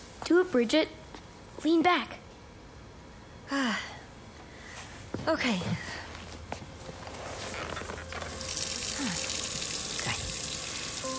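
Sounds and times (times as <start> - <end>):
speech: 0.3 - 1.0, 1.6 - 2.2, 3.5 - 3.9, 5.2 - 5.9
soft knocks and shuffles: 4.7 - 8.2
tap water running into a sink: 8.3 - 11.1.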